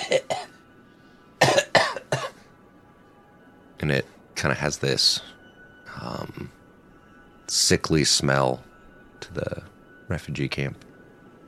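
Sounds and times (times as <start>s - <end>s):
people coughing as they walk past shelters in a refugee camp: 0.0s - 0.6s, 1.4s - 2.4s
speech: 3.8s - 5.4s, 7.5s - 10.9s.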